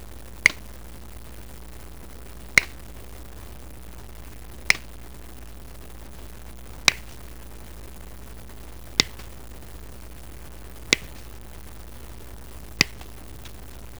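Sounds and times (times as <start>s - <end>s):
snip: 0.4s - 0.8s, 2.6s - 2.9s, 4.6s - 4.9s, 6.8s - 7.3s, 9.0s - 9.4s, 10.9s - 11.4s, 12.8s - 13.7s.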